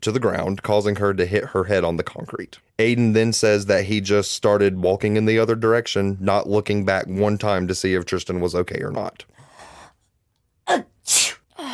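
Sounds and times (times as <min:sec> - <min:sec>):
speech: 0:00.0 - 0:09.3, 0:10.7 - 0:11.4
person sneezing: 0:10.7 - 0:11.7.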